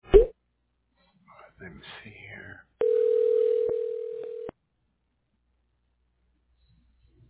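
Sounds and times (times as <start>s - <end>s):
speech: 1.6s - 2.7s
telephone dial tone: 2.8s - 4.5s.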